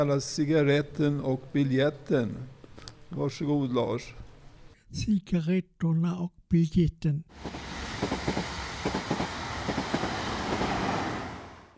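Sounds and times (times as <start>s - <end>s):
speech: 0.0s - 4.2s, 4.9s - 8.4s
train rolling along the rails with a low rumble: 7.3s - 11.7s.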